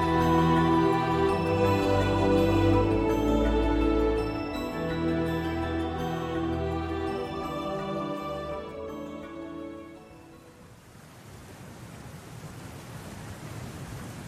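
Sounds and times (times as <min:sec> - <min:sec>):
sustained musical tone: 0:00.0 - 0:10.7
rushing water: 0:00.0 - 0:14.2.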